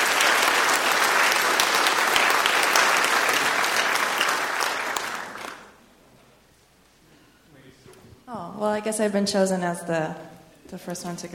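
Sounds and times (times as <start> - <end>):
audience applause welcoming speakers at a health equity session: 0.0 - 5.8
speech: 8.6 - 11.3.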